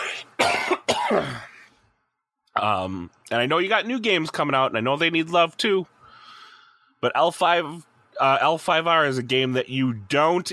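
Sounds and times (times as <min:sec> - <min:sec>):
harsh person coughing: 0:00.0 - 0:01.7
speech: 0:01.1 - 0:01.5, 0:02.6 - 0:05.9, 0:07.0 - 0:10.5.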